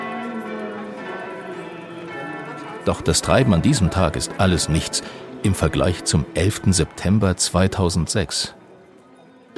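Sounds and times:
church bells pealing at a pilgrimage chapel: 0.0s - 8.2s
prayer amplified through loudspeakers at a pilgrimage chapel: 0.0s - 8.5s
speech: 2.8s - 8.6s.

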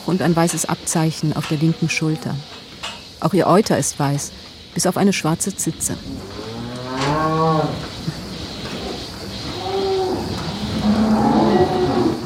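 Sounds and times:
speech: 0.0s - 6.5s
black and white dairy cow mooing at a farm near Soest: 6.3s - 7.8s, 9.6s - 12.2s.

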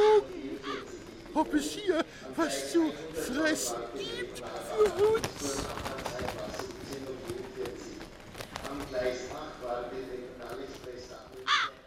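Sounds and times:
ravens cawing: 0.0s - 1.0s, 11.4s - 11.8s
busy outdoor noise: 0.0s - 11.8s
speech: 1.4s - 6.5s.

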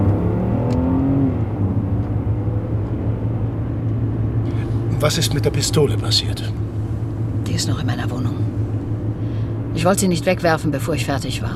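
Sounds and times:
car engine running while turning around and driving off: 0.0s - 11.5s
speech: 5.0s - 6.6s, 7.6s - 8.5s, 9.8s - 11.5s.

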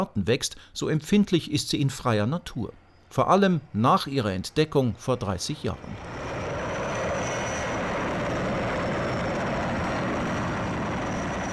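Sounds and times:
speech: 0.0s - 6.3s
helicopter engine roaring with a faint high whine: 5.8s - 11.5s.

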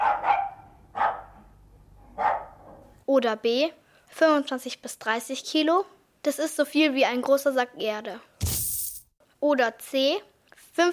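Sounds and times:
small dog barking: 0.0s - 1.4s, 2.2s - 2.6s
speech: 3.2s - 8.3s, 9.4s - 10.9s.

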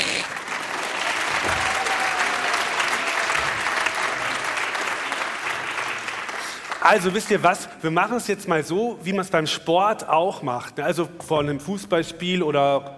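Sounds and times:
crowd applauding: 0.0s - 7.6s
speech: 6.8s - 12.9s.

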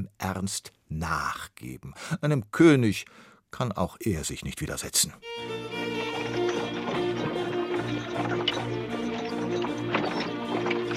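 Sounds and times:
speech: 0.2s - 6.6s
heavily loaded horse-drawn carts with clip-clopping hooves: 5.4s - 10.9s.

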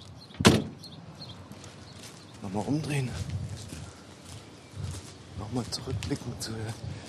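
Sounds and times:
window being shut: 0.4s - 0.8s
speech: 2.5s - 3.4s, 5.5s - 7.0s.

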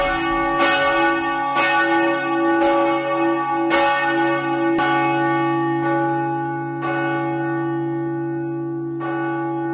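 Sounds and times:
church bells ringing: 0.0s - 9.7s.

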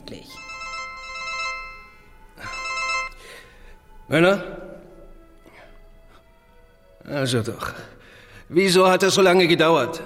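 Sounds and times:
speech: 0.1s - 0.5s, 4.1s - 4.6s, 7.1s - 10.0s
telephone ringing with an electronic tone: 0.4s - 3.4s.

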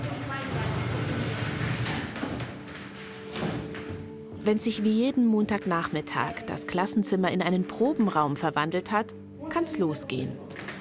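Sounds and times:
chairs and tables scraping and bumping as they are shifted around a room: 0.0s - 4.5s
speech: 4.5s - 10.7s.

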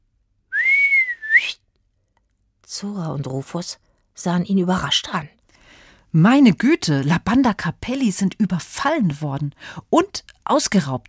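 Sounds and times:
person whistling a long note and a rising short note: 0.5s - 1.6s
speech: 2.8s - 5.4s, 6.1s - 11.0s.

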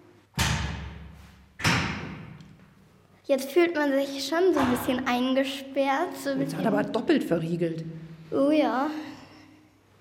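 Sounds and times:
heavy door slamming shut with booming decay: 0.4s - 2.4s, 4.6s - 5.0s
speech: 3.3s - 9.2s.

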